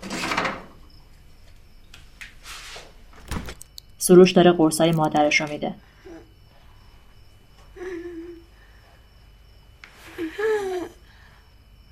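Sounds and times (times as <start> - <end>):
door or drawer pulled open with a rustling whoosh: 3.2 - 3.7
quieter handling sounds: 3.2 - 3.8
speech: 4.0 - 5.9.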